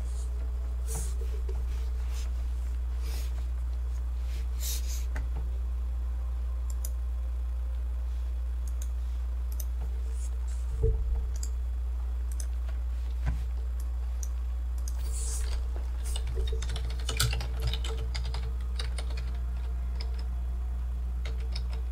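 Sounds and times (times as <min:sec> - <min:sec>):
steady low hum: 0:00.0 - 0:21.9
rapid typing on a computer keyboard: 0:16.1 - 0:19.4, 0:21.2 - 0:21.9.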